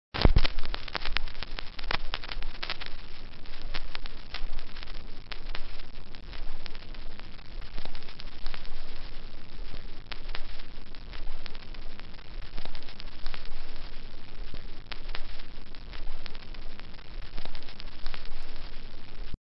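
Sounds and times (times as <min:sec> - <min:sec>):
cassette hiss: 0:00.2 - 0:19.4.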